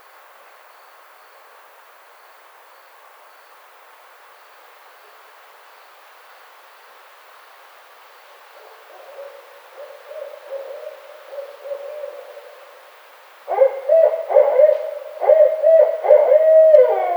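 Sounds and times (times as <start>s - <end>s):
barred owl hooting: 8.6s - 17.1s.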